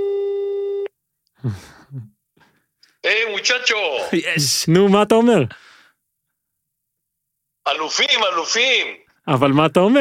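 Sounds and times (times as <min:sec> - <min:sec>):
steady telephone tone on a call: 0:00.0 - 0:00.9
speech: 0:01.4 - 0:02.2, 0:03.0 - 0:05.7, 0:07.7 - 0:09.9.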